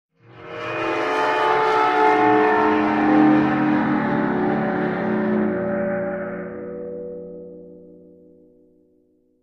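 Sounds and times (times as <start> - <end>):
eerie dry ice double sound: 0.5 - 6.6.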